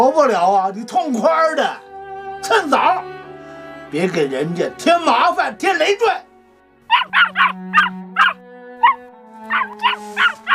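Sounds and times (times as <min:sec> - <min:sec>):
speech: 0:00.1 - 0:03.2, 0:03.9 - 0:06.3, 0:06.9 - 0:08.4, 0:09.5 - 0:10.4
dog barking in high-pitched yaps: 0:06.9 - 0:10.5.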